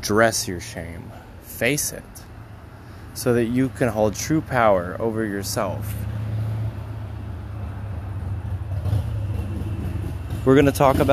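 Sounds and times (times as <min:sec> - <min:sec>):
speech: 0:00.0 - 0:02.2, 0:03.2 - 0:06.1, 0:10.4 - 0:11.1
motorcycle engine droning as it passes: 0:07.4 - 0:11.1.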